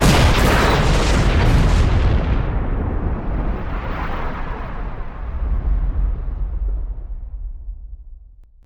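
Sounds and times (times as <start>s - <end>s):
ships in combat: 0.0s - 6.7s
ship destroyed in combat: 0.0s - 7.9s.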